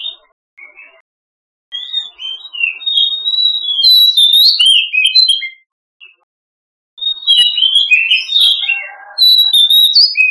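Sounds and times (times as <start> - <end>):
Oriental magpie-robin singing varied whistled phrases: 1.7 - 6.2, 7.0 - 10.2.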